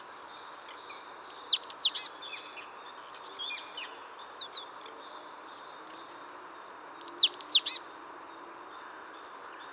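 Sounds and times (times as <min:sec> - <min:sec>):
great tit Parus major calls with soft chips and sharp high notes: 0:01.3 - 0:02.1, 0:07.0 - 0:07.8.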